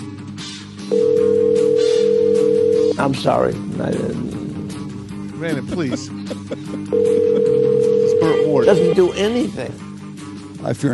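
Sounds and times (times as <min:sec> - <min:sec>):
telephone ringing with a steady electronic tone: 0:00.9 - 0:03.0, 0:06.9 - 0:09.2
speech: 0:03.0 - 0:04.4, 0:05.4 - 0:09.9, 0:10.6 - 0:10.9
laughter: 0:05.4 - 0:07.8.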